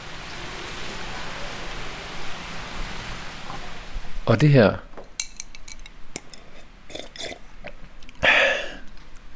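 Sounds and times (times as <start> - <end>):
speech: 4.3 - 4.9
ice cubes clinking against a glass of gin and tonic: 5.2 - 7.4.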